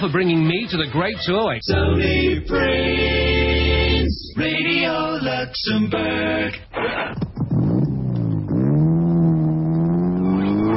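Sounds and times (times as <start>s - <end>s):
speech: 0.0s - 3.4s, 4.4s - 7.2s
racing supercar engines revving and accelerating at the Brands Hatch motor racing circuit: 6.9s - 10.7s.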